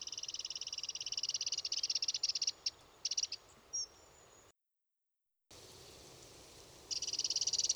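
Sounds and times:
Eurasian wren Troglodytes troglodytes trilling: 0.0s - 3.9s, 5.6s - 7.7s.

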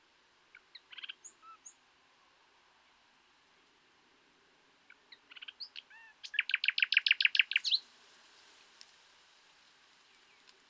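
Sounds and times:
common nightingale Luscinia megarhynchos song: 0.0s - 3.0s, 4.8s - 7.9s, 10.0s - 10.6s.

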